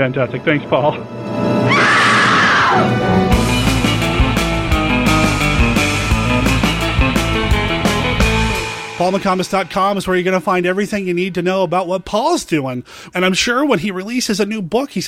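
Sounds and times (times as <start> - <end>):
speech: 0.0 - 1.8, 2.7 - 3.4, 9.0 - 15.0
orchestral-sounding music: 0.0 - 12.1
woman's scream from classic film: 1.7 - 3.0.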